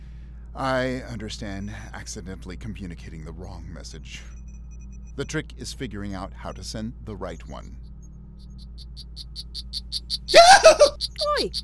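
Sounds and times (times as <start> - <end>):
low hum: 0.0 - 11.6
speech: 0.6 - 4.4, 5.2 - 7.9, 8.9 - 11.6
poison frog chirping: 6.1 - 11.6.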